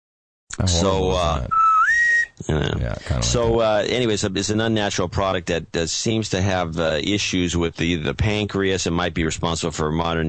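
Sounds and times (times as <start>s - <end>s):
speech: 0.6s - 1.6s, 2.4s - 10.2s
shrill bosun's whistle blast sliding upward in pitch: 1.5s - 2.3s.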